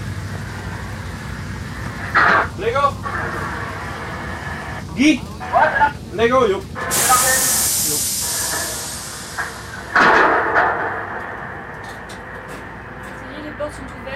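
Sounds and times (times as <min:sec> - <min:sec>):
rumbling rush: 0:00.0 - 0:14.1
speech: 0:05.0 - 0:07.0
long pneumatic hiss of lock doors opening: 0:06.8 - 0:12.4.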